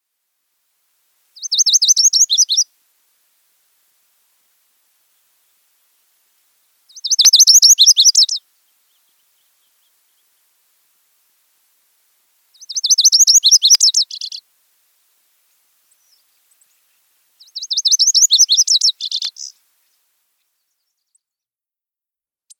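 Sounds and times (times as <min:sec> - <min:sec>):
Lazuli Bunting singing: 0:01.4 - 0:02.6, 0:06.9 - 0:10.5, 0:12.5 - 0:14.4, 0:15.9 - 0:21.4.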